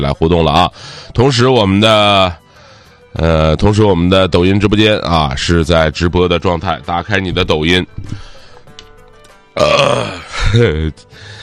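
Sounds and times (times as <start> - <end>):
speech: 0.0 - 2.4, 3.1 - 8.3, 9.6 - 11.4
loud drawn-out burp: 9.6 - 10.5.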